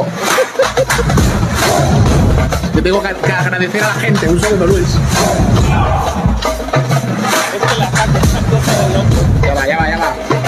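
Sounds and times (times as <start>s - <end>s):
laughter: 0.0s - 9.9s
many voices shouting a haka-style war chant: 1.5s - 2.6s, 5.0s - 6.9s
speech: 2.8s - 6.0s, 7.7s - 10.3s.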